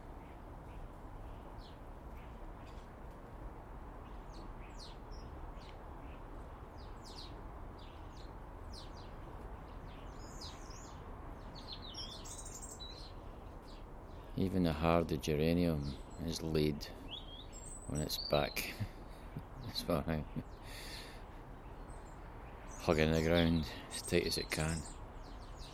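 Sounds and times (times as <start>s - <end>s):
birds chirping and singing: 0.0s - 2.9s, 3.9s - 25.7s
outdoor ambient noise: 0.0s - 25.7s
speech: 14.4s - 17.0s, 17.9s - 19.0s, 19.8s - 20.9s, 22.8s - 25.0s.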